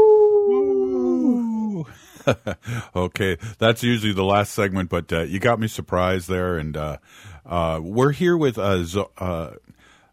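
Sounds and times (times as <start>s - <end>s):
person imitating a wolf howl: 0.0s - 1.9s
speech: 2.3s - 9.6s.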